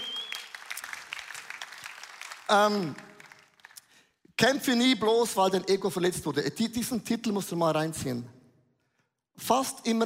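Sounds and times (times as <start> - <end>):
high whistle-like tone: 0.0 - 0.5
crowd applauding: 0.0 - 3.9
speech: 2.5 - 3.1, 4.4 - 8.4, 9.4 - 10.0.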